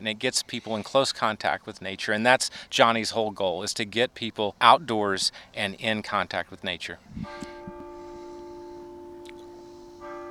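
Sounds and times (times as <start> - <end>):
speech: 0.0 - 7.5
church bell ringing at a chapel overlooking Table Rock Lake: 7.2 - 10.2.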